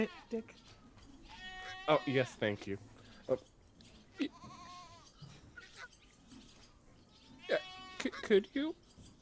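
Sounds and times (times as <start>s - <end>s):
goat bleating: 0.0s - 0.6s, 1.2s - 2.4s, 4.1s - 5.8s, 7.3s - 8.5s
speech: 0.0s - 0.8s, 1.9s - 3.5s, 4.2s - 4.6s, 7.5s - 8.8s.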